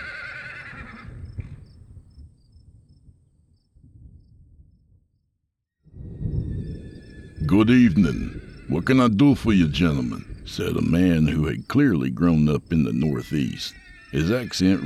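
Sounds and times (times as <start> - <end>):
horses whinnying: 0.0 - 1.3, 6.6 - 11.4, 12.9 - 14.8
horses snorting: 7.4 - 14.8
speech: 7.5 - 14.8.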